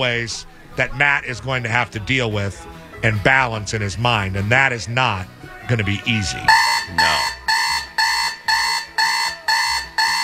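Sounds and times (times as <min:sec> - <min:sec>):
speech: 0:00.0 - 0:07.3
GE clock radio alarm beeping: 0:06.1 - 0:10.2.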